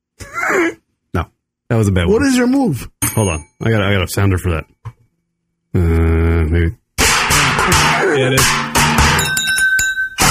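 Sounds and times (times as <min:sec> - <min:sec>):
speech: 0:00.5 - 0:04.8, 0:05.7 - 0:06.8, 0:07.7 - 0:08.7
ice clinking against a glass: 0:09.2 - 0:10.2.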